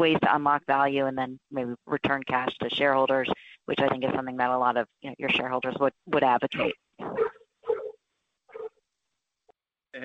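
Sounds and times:
speech: 0.0 - 7.4
dog barking: 7.1 - 8.7.

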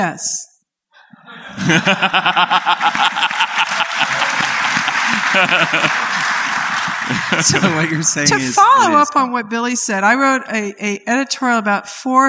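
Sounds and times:
speech: 0.0 - 0.5, 1.3 - 6.4, 7.1 - 12.2
audience chuckling and laughing: 1.0 - 9.1
audience clapping: 1.6 - 9.0.

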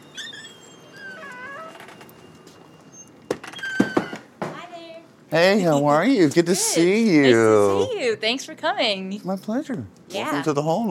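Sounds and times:
door creaking open: 0.0 - 4.6
speech: 5.3 - 10.8.

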